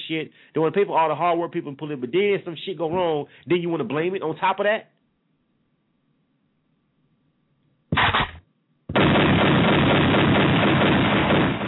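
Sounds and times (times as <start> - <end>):
speech: 0.1 - 5.0
loud rapid gunfire sound effects: 7.9 - 11.6.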